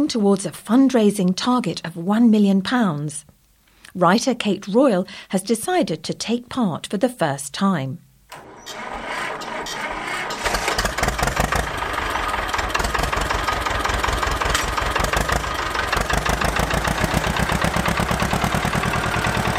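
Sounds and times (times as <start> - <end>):
speech: 0.0 - 3.3, 3.9 - 9.0
tractor engine cranking and chugging at idle on a charity road run: 8.4 - 19.5.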